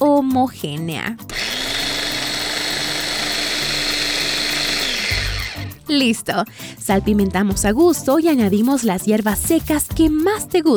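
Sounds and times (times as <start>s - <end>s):
speech: 0.0s - 1.4s, 5.9s - 10.7s
food processor whirring as it blends garlic, nuts, lemon juice and olive oil: 1.3s - 5.9s.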